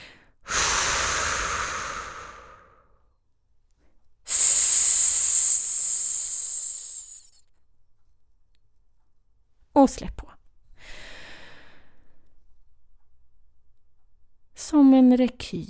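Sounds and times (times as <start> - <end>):
forceful hissing exhales in a breathing exercise: 0.5 - 2.8, 4.3 - 7.3
speech: 9.8 - 10.3, 15.1 - 15.6.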